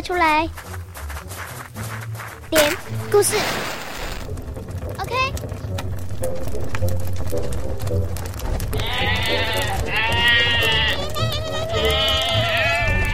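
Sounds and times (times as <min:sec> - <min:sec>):
speech: 0:00.0 - 0:00.9, 0:02.5 - 0:03.8
low rumbling background: 0:04.2 - 0:10.0
several sheep gathered around a fire bleating: 0:08.7 - 0:13.1.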